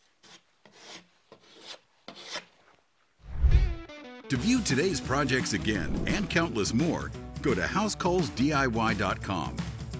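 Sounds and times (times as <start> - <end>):
putty knife scraping spackle across a wall: 0.0 - 2.8
speech: 4.3 - 9.7.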